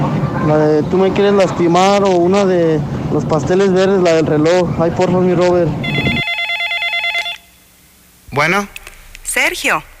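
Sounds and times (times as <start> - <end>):
speech: 0.5 - 6.1, 8.4 - 8.8, 9.4 - 9.9
telephone ringing with a bright warbling electronic trill: 5.8 - 7.5.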